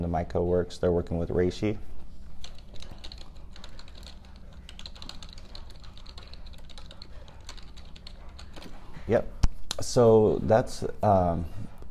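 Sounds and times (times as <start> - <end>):
speech: 0.0 - 2.0, 9.1 - 11.7
low hum: 0.0 - 11.8
rapid typing on a computer keyboard: 2.4 - 8.7.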